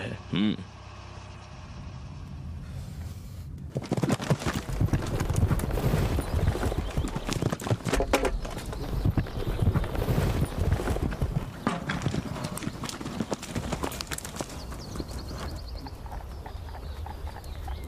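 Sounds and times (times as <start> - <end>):
horse hooves clip-clopping while being ridden at a walk: 3.7 - 17.8.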